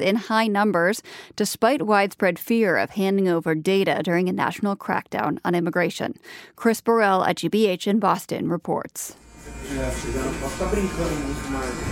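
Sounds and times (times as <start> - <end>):
speech: 0.0 - 11.9
electric hair clippers buzzing at a barbershop outside Boston Massachusetts: 9.2 - 11.9.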